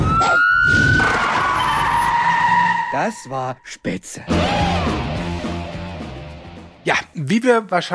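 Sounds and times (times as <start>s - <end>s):
loud siren wailing: 0.0s - 3.4s, 4.3s - 5.5s
speech: 3.0s - 5.1s, 6.8s - 7.9s.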